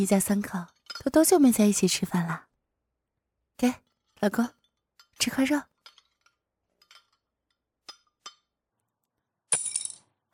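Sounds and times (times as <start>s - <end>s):
speech: 0.0s - 2.5s, 3.6s - 4.6s, 5.2s - 5.7s
wooden chopsticks dropped by a child clattering on a hard floor: 0.2s - 1.3s, 4.0s - 8.6s.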